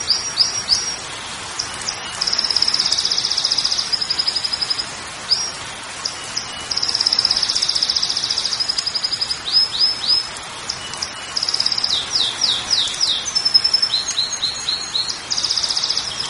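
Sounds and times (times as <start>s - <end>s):
Belgian canary song of loud fast trills and rolling phrases: 0.0s - 16.2s
steady hiss: 0.0s - 16.2s.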